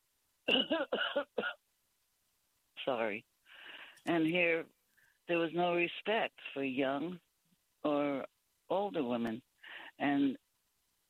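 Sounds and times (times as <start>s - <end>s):
person coughing harshly: 0.5s - 1.6s
speech: 0.5s - 1.6s, 2.9s - 3.3s, 4.0s - 7.2s, 7.8s - 10.4s.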